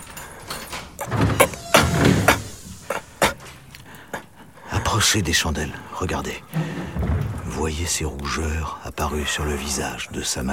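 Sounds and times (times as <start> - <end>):
latch rattles: 0.0 - 3.7, 6.5 - 8.0
scraping thuds: 0.0 - 4.4, 5.2 - 8.4
wooden clunks of doors and windows flung open: 0.6 - 4.2, 6.5 - 8.0
speech: 5.0 - 10.5.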